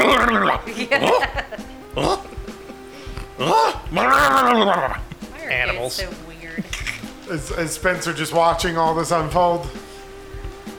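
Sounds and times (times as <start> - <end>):
person imitating a dog barking: 0.0 - 1.4, 3.4 - 5.0
laughter: 0.0 - 8.2
speech: 0.1 - 2.2, 3.9 - 9.8.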